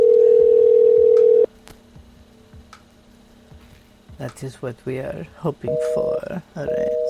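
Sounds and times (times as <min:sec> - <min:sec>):
outgoing phone call electronic ring tone unanswered: 0:00.0 - 0:01.5, 0:05.7 - 0:06.1, 0:06.7 - 0:07.0
speech: 0:04.2 - 0:07.0.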